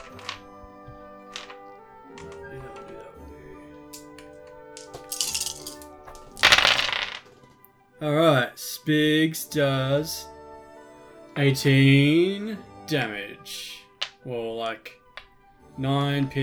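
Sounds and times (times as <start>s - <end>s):
dice clattering across a hard tabletop: 0.0s - 7.3s, 14.0s - 14.2s
speech: 8.0s - 10.3s, 11.4s - 15.0s, 15.8s - 16.4s.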